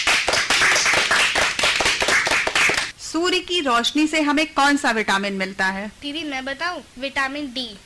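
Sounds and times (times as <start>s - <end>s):
group clapping at a children's quiz: 0.0s - 2.9s
speech: 3.1s - 7.8s.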